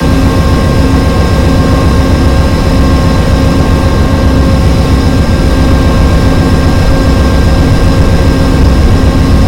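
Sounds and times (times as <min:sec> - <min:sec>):
P42 HEP generator: 0:00.0 - 0:09.4.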